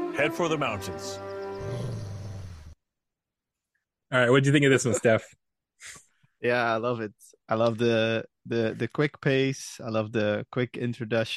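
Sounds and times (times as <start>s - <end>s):
speech: 0.2s - 2.0s, 4.1s - 11.3s
wolf growling: 1.6s - 2.8s.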